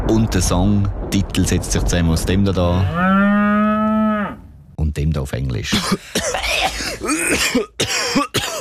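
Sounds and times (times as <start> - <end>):
speech: 0.1 - 3.3, 4.9 - 8.3
harsh raspy coughs: 5.7 - 8.6
throat clearing: 5.7 - 8.6.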